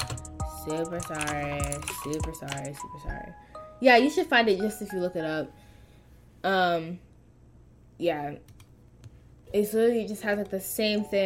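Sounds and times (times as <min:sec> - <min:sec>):
computer keyboard keystrokes clicking: 0:00.0 - 0:03.0
speech: 0:00.7 - 0:05.6, 0:06.4 - 0:07.1, 0:08.0 - 0:08.6, 0:09.5 - 0:11.2.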